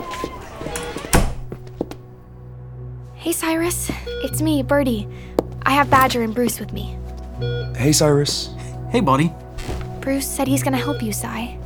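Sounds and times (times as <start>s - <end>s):
door shutting with a heavy thunk: 0.0s - 2.0s
speech: 3.2s - 9.3s, 10.1s - 11.6s.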